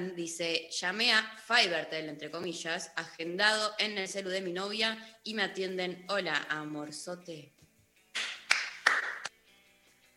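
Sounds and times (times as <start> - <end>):
speech: 0.0 - 7.6
hand clapping: 8.1 - 9.4.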